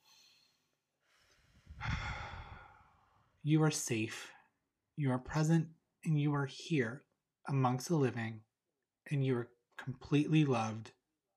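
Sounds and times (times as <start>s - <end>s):
deep breath in through the nose and out through the mouth: 0.0s - 3.4s
speech: 3.4s - 4.4s, 5.0s - 11.0s.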